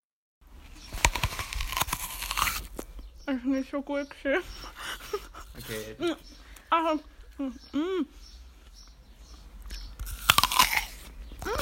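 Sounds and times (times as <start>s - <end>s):
teeth biting into an apple: 0.7s - 3.0s, 9.6s - 11.6s
wet tearing and crackling chewing of an apple: 0.7s - 3.0s, 8.6s - 11.6s
speech: 3.3s - 8.3s
laughter: 4.6s - 6.3s.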